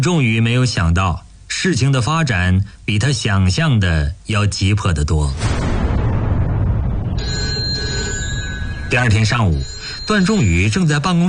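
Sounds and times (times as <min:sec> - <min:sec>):
speech: 0:00.0 - 0:05.6, 0:08.9 - 0:11.2
low steady rumble: 0:05.3 - 0:10.5
telephone bell ringing: 0:07.2 - 0:11.2.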